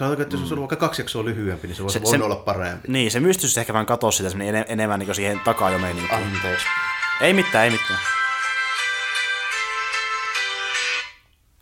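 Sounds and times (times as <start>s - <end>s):
speech: 0.0s - 8.2s
mobile phone ringing with a bright repeating electronic tone: 5.0s - 11.2s.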